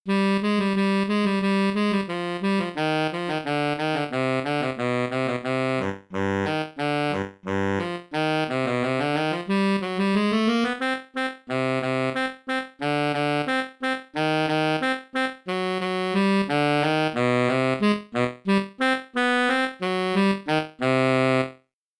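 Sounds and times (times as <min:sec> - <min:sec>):
Eb baritone saxophone playing a fast technical passage: 0:00.1 - 0:21.6.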